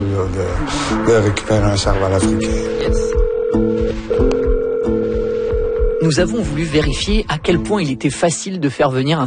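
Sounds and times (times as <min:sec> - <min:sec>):
speech: 0:00.2 - 0:04.4, 0:06.1 - 0:09.2
low thumps: 0:01.7 - 0:07.8
telephone ringing during a call: 0:02.6 - 0:06.4.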